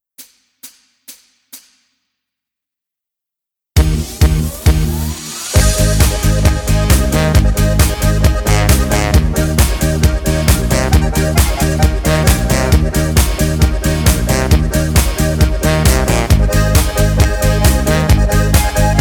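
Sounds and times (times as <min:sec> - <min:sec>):
music in A-flat major without lead or choir: 0:04.8 - 0:19.0.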